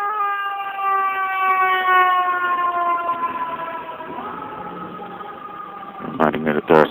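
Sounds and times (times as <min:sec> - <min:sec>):
fire engine siren wailing: 0:00.0 - 0:06.8.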